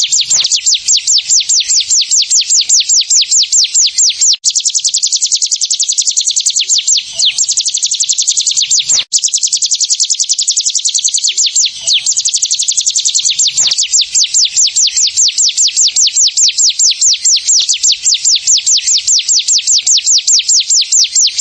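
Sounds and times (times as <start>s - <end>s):
prinia singing: 0.0s - 21.3s.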